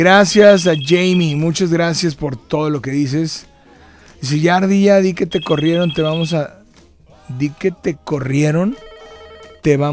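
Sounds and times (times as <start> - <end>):
electronic telephone ringing with an incoming call: 0.0 - 2.0, 5.2 - 6.6, 8.6 - 9.9
speech: 0.0 - 3.5, 4.2 - 6.6, 7.3 - 8.9, 9.6 - 9.9.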